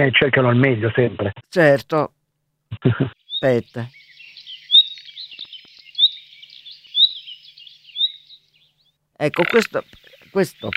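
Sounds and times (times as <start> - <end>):
speech: 0.0 - 4.0, 9.2 - 10.7
nightingale singing: 3.2 - 10.7.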